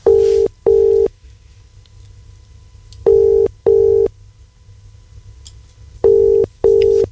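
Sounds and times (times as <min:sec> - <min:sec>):
faint low hum: 0:00.0 - 0:07.0
telephone ringing tone heard down the line in double bursts: 0:00.1 - 0:01.1, 0:03.1 - 0:04.1, 0:06.0 - 0:07.0.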